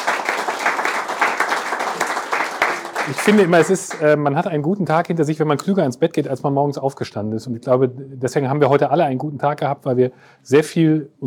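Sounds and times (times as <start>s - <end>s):
audience applauding two panelists at a conference session: 0.0s - 4.2s
speech: 3.1s - 11.2s.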